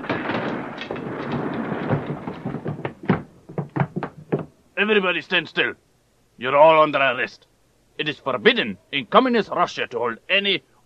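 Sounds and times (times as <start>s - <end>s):
door forced open by police breaking it in: 0.0s - 4.6s
sharp heavy bangs of a door giving way: 0.0s - 5.0s
speech: 4.8s - 5.8s, 6.4s - 10.7s.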